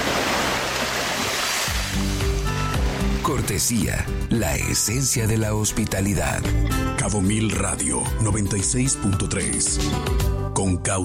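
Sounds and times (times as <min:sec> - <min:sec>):
ocean surf: 0:00.0 - 0:03.6
speech: 0:03.3 - 0:11.0.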